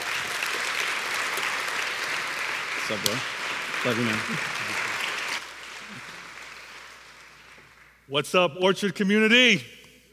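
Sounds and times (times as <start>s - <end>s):
audience applauding to welcome a speaker: 0.0s - 8.0s
speech: 2.9s - 4.9s, 8.1s - 9.8s.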